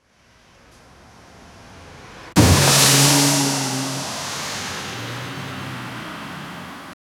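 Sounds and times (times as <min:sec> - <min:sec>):
car crashing into pool in an accident: 0:02.4 - 0:07.0.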